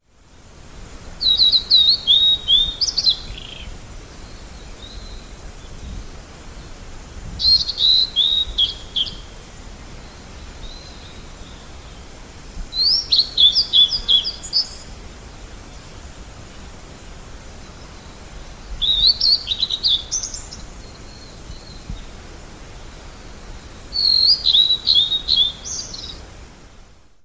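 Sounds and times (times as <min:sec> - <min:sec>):
ooruri singing: 0:01.2 - 0:06.8, 0:07.4 - 0:09.4, 0:10.0 - 0:12.1, 0:12.7 - 0:15.0, 0:17.6 - 0:22.2, 0:22.8 - 0:26.2.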